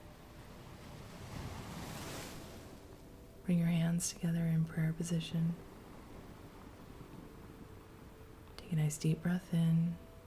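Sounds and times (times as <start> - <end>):
ocean surf washing against a shore: 0.0 - 3.3, 5.5 - 8.4
faint breezy hiss: 0.0 - 10.2
speech: 3.5 - 5.7, 8.7 - 10.0.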